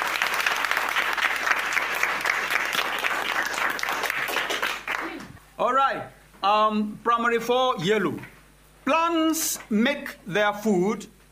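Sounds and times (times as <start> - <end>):
crowd applause for quiz contestants: 0.0 - 5.4
speech: 5.6 - 8.3, 8.9 - 11.2.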